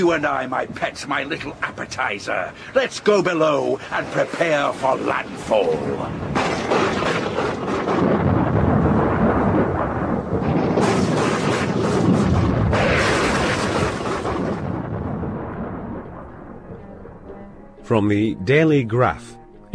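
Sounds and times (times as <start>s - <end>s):
speech: 0.0s - 6.4s, 17.9s - 19.7s
rain in a storm at sea: 0.0s - 17.2s
wind in a storm at sea: 0.0s - 17.9s
crashing sea surges in a storm: 4.0s - 17.3s
rolling thunder in a storm at sea: 4.0s - 17.8s.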